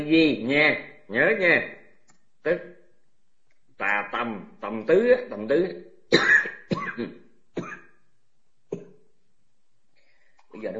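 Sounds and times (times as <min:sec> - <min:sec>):
speech: 0:00.0 - 0:01.8, 0:02.4 - 0:02.8, 0:03.8 - 0:07.7, 0:10.6 - 0:10.7
aging man coughing: 0:06.1 - 0:08.0.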